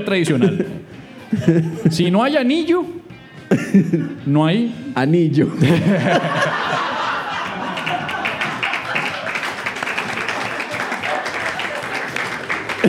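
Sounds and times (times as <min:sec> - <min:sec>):
speech: 0:00.0 - 0:06.6
audience laughter: 0:00.2 - 0:02.2, 0:03.5 - 0:04.2, 0:05.5 - 0:12.8
crowd murmur: 0:07.2 - 0:12.8
large audience applauding: 0:07.2 - 0:12.8.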